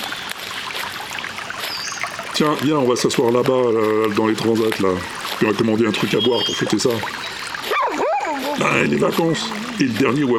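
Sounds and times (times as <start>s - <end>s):
water flowing into a beach lagoon: 0.0s - 10.3s
speech: 2.4s - 7.3s, 8.6s - 10.3s.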